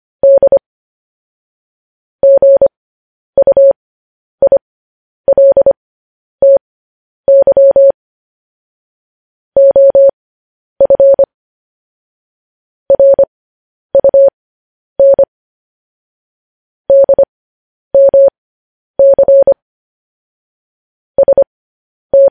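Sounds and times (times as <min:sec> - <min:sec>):
mid-pitched Morse code beeps: 0:00.2 - 0:00.6, 0:02.2 - 0:02.7, 0:03.4 - 0:03.8, 0:04.4 - 0:04.6, 0:05.3 - 0:05.8, 0:07.3 - 0:08.0, 0:09.6 - 0:10.1, 0:10.8 - 0:11.3, 0:12.9 - 0:13.3, 0:14.0 - 0:14.3, 0:15.0 - 0:15.3, 0:16.9 - 0:17.3, 0:18.0 - 0:18.3, 0:19.0 - 0:19.6, 0:21.2 - 0:21.5.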